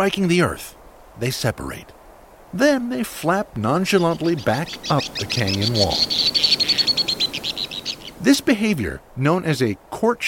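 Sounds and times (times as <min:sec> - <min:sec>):
speech: 0:00.0 - 0:06.6, 0:08.2 - 0:10.2
White-throated Swift shrill twittering trill in a western canyon: 0:03.8 - 0:08.3.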